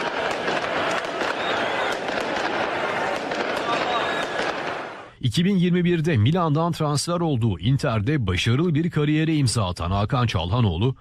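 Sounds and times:
fireworks crackling at a football celebration in a square at night: 0.0 - 5.1
football fans crowd noise in a square: 0.0 - 5.2
speech: 5.2 - 11.0.

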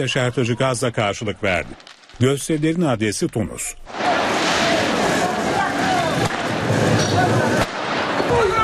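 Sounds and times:
speech: 0.0 - 4.3
firework bangs during street protest clashes: 1.4 - 8.6
crowd noise and shouting at street protest: 3.9 - 8.6.

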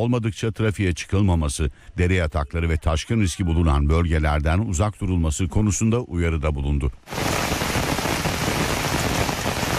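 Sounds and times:
speech: 0.0 - 7.5
heavy downpour rain striking surfaces in Fatsa, Ordu: 7.1 - 9.7.

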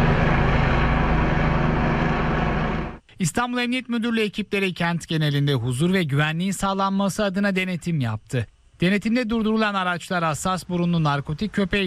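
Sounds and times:
police helicopter rotor and engine drone flying air support over a city: 0.0 - 3.0
speech: 3.2 - 11.8.

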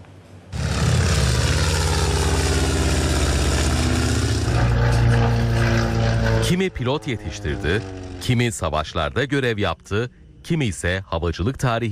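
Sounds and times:
historic aircraft engines droning in formation flight at an air show: 0.5 - 9.0
speech: 6.5 - 11.9.

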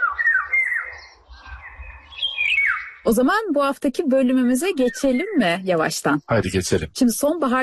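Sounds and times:
poplar-loving long-winged bird whistled calls: 0.0 - 3.1, 4.8 - 5.6
speech: 3.0 - 7.6.

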